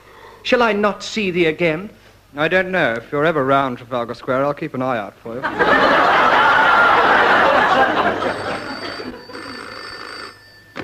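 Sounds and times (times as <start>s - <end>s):
speech: 0.4s - 6.3s
audience laughter: 5.4s - 9.2s
telephone bell ringing: 6.8s - 10.8s.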